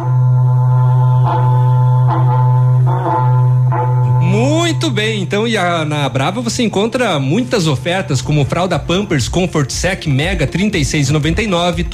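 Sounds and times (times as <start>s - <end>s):
berrante cattle horn blaring a long low note: 0.0s - 8.5s
speech: 4.9s - 11.9s.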